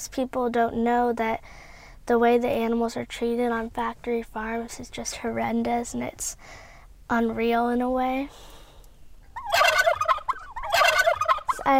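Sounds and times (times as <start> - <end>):
speech: 0.0 - 8.6
turkey gobbling: 9.3 - 11.7.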